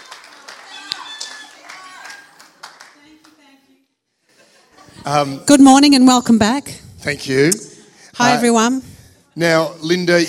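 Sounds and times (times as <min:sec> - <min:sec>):
crowd clapping: 0:00.0 - 0:03.6
speech: 0:05.0 - 0:10.2.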